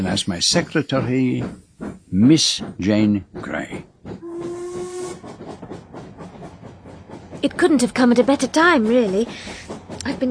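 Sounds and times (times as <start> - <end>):
speech: 0.0 - 3.8, 7.4 - 10.3
hissing steam: 0.0 - 10.3
steam train whistle: 4.2 - 5.4.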